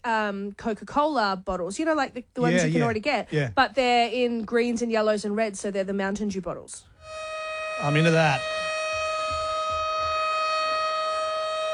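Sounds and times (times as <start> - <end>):
speech: 0.0 - 6.9, 7.8 - 8.6
civil defense siren wailing for a cyclone alert: 7.0 - 11.7
soft low thumps: 8.4 - 10.4.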